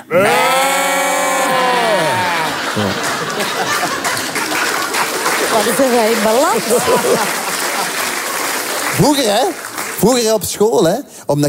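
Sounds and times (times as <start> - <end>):
people imitating sheep bleating: 0.0 - 2.9
people chattering: 0.0 - 10.4
speech: 0.1 - 0.4, 5.6 - 7.5, 8.9 - 11.4
people laughing roughly: 0.1 - 10.0.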